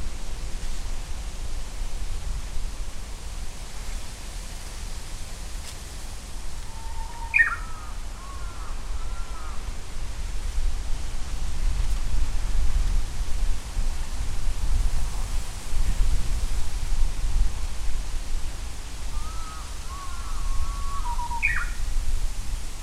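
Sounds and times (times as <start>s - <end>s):
steady hiss: 0.0s - 22.8s
Japanese bush warbler singing: 6.7s - 9.5s, 19.2s - 21.8s.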